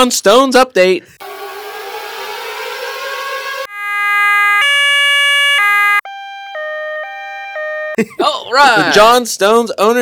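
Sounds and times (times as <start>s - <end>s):
speech: 0.0s - 1.3s, 8.0s - 10.0s
burst of harsh noise: 1.2s - 4.5s
loud two-tone electronic siren: 1.2s - 8.0s.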